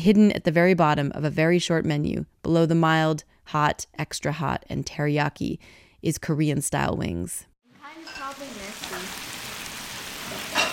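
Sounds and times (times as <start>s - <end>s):
speech: 0.0s - 8.5s
bulgogi sizzling on a grill: 7.7s - 10.7s.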